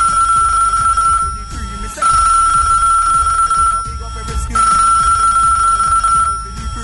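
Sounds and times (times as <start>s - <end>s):
telephone ringing in long electronic bursts: 0.0s - 6.8s.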